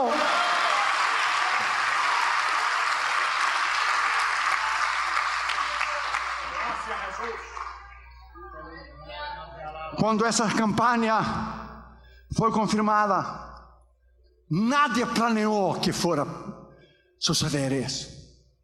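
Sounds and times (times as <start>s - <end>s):
large audience applauding: 0.0s - 8.3s
speech: 10.0s - 11.6s, 12.3s - 13.4s, 14.5s - 16.5s, 17.2s - 18.2s.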